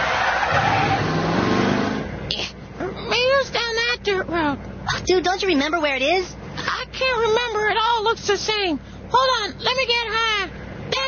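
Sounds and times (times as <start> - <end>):
car braking and skidding on a dirt road: 0.0 - 2.2
low car engine rumble: 0.0 - 11.0
speech: 5.1 - 6.4, 7.0 - 10.6.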